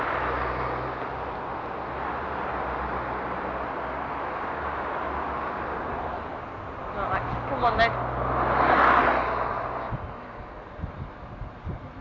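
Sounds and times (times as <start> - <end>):
dense roar of road traffic passing at a crossing with traffic lights: 0.0 - 11.9.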